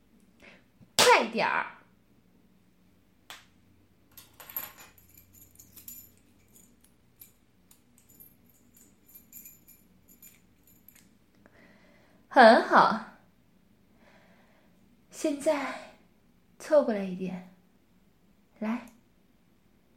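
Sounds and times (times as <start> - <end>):
low steady hum: 0.0 - 19.9
speech: 1.2 - 1.8, 12.4 - 13.1, 15.2 - 15.9, 16.7 - 17.5, 18.6 - 18.9
bunch of keys jangling as they are handed over: 4.1 - 11.2.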